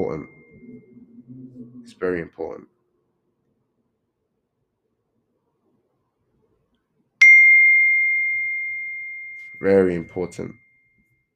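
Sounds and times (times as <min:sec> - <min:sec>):
electronic ding: 0:00.0 - 0:01.0, 0:07.2 - 0:11.1
speech: 0:02.0 - 0:02.8, 0:09.6 - 0:10.6.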